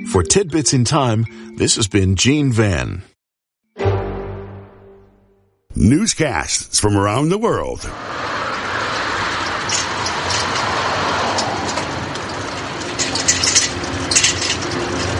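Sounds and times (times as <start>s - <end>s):
speech: 0.0s - 3.1s, 5.8s - 8.6s
city street traffic in Karlsruhe heard from a moving bicycle: 6.3s - 15.1s
sharp rattling clicks: 8.9s - 15.1s.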